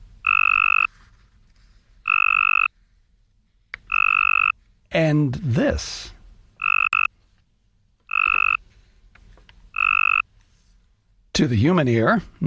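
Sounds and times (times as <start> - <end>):
Cope's gray tree frog mating call trills: 0.2 - 0.9, 2.0 - 2.7, 3.8 - 4.6, 6.6 - 7.1, 8.1 - 8.6, 9.7 - 10.2
speech: 5.0 - 6.2, 11.4 - 12.4.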